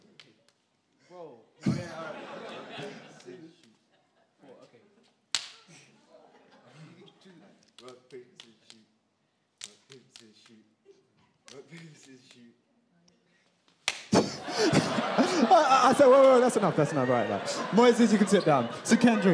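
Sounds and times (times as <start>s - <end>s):
speech: 1.1s - 3.5s, 11.7s - 12.6s, 14.5s - 19.3s
laughter: 1.6s - 7.6s, 14.1s - 19.3s
hand slaps in a finger game: 5.3s - 5.7s, 9.6s - 10.6s, 11.4s - 12.4s, 13.7s - 14.4s.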